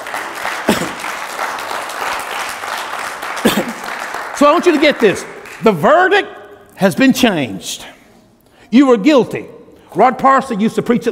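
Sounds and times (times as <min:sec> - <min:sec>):
audience applause: 0:00.0 - 0:05.6
speech: 0:04.4 - 0:08.0, 0:08.7 - 0:11.1.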